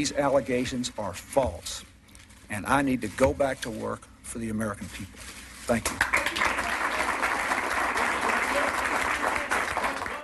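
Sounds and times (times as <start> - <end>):
speech: 0.0 - 1.9, 2.5 - 6.4
sizable crowd applauding after a speech: 5.8 - 10.2.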